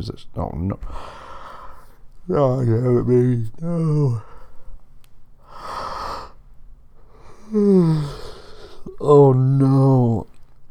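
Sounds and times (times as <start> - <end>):
speech: 0.0 - 1.2, 2.3 - 4.3, 7.5 - 8.2, 9.0 - 10.3
person yawning: 7.4 - 10.3.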